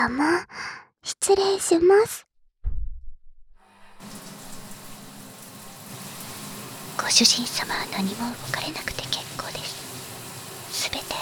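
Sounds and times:
speech: 0.0s - 2.3s, 7.0s - 9.7s
brief low thump: 2.6s - 3.2s
shower water running: 3.7s - 11.2s.

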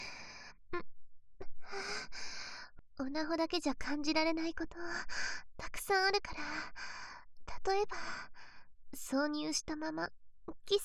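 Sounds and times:
woman breathing softly: 0.0s - 0.6s, 1.6s - 2.8s, 4.8s - 5.5s, 6.4s - 7.3s, 7.9s - 8.7s
speech: 3.0s - 6.9s, 7.6s - 8.3s, 9.1s - 10.8s.

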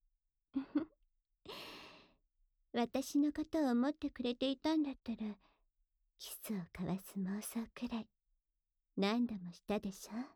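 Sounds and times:
deep breath: 1.5s - 2.2s
speech: 2.8s - 5.5s, 6.2s - 8.1s, 9.0s - 10.3s.

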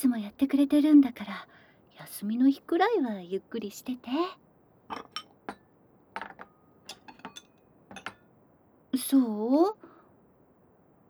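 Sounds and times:
speech: 0.1s - 5.1s, 8.9s - 9.8s
dishes clinking and clattering as plates are cleared for washing: 4.9s - 8.3s.

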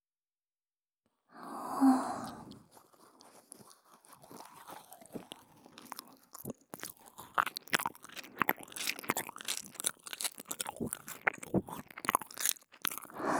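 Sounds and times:
soft breathy sigh: 1.4s - 2.5s, 13.2s - 13.3s
wet mouth munching and sucking: 2.2s - 13.3s.

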